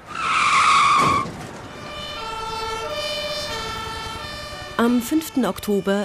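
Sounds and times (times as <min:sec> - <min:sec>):
car tires screeching: 0:00.0 - 0:04.3
speech: 0:04.8 - 0:06.0.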